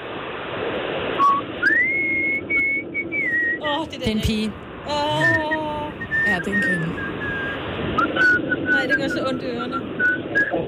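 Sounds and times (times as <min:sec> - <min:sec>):
woman whistling an imitation of a bird song: 0:01.2 - 0:03.7, 0:05.4 - 0:10.5
speech: 0:03.8 - 0:07.1, 0:08.2 - 0:10.6.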